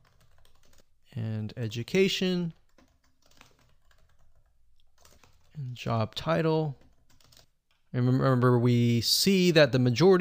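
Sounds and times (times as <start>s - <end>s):
typing on a computer keyboard: 0.0s - 0.9s, 2.5s - 5.6s, 6.8s - 7.9s
speech: 1.2s - 2.6s, 5.6s - 6.8s, 7.9s - 10.1s.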